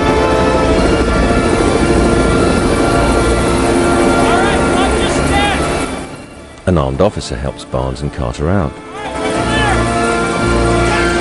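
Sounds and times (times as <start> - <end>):
helicopter landing on an office block roof: 0.0 - 11.1
speech: 6.7 - 9.2.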